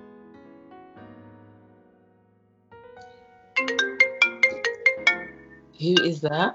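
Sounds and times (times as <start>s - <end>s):
mobile phone ringtone with melodic chime and rapid electronic notes: 3.6s - 6.2s
speech: 5.8s - 6.5s.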